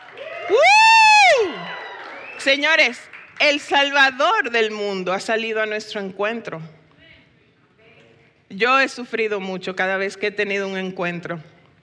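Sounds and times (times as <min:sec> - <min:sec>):
crowd shouting joyfully: 0:00.0 - 0:02.3
loud sustained cry: 0:00.2 - 0:01.8
speech: 0:00.5 - 0:00.8, 0:02.4 - 0:06.8, 0:08.5 - 0:11.5.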